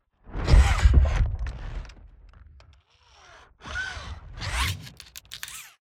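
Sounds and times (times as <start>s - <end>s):
small robot: 2.8s - 5.8s.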